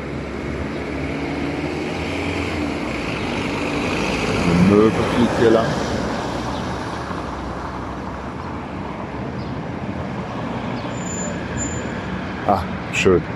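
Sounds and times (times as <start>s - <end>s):
road traffic with cars passing: 0.0s - 13.3s
speech: 5.3s - 5.9s, 12.5s - 13.3s.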